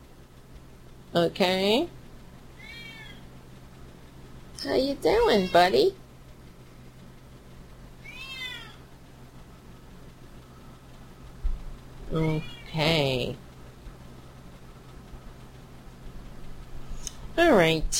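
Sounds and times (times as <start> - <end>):
low steady hum: 0.0 - 17.9
speech: 1.1 - 2.0, 4.6 - 6.0, 12.2 - 13.4, 17.4 - 17.9
cat meowing: 2.6 - 3.2, 5.2 - 5.7, 8.0 - 8.8.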